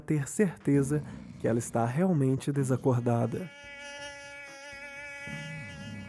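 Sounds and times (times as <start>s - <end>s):
speech: 0.1s - 3.8s
flying insect buzzing with high-pitched whine: 2.5s - 6.0s.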